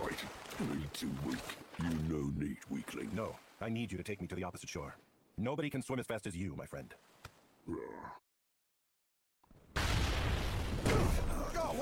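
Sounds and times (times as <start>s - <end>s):
speech: 0.6s - 8.2s
short vocal grunt: 7.7s - 8.2s
loud rumbling grenade explosion: 9.7s - 11.6s.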